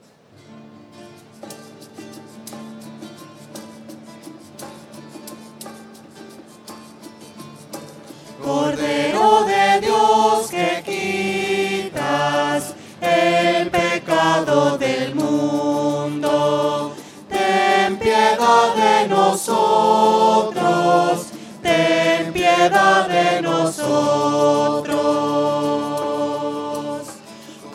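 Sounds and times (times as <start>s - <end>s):
voices: 8.4s - 27.7s.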